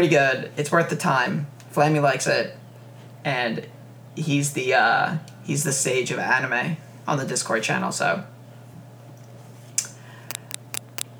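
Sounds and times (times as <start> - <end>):
speech: 0.0 - 2.6, 3.2 - 8.3
steady low electrical hum: 0.0 - 11.1
small sharp plastic wire clicks: 10.3 - 11.1.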